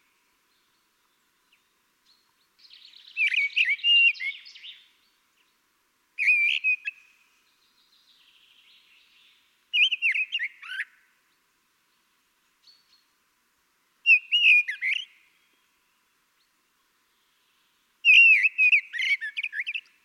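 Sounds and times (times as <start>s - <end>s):
Turdus merula common blackbird singing: 0.5s - 5.1s, 6.2s - 11.0s, 14.0s - 15.6s, 17.1s - 20.0s.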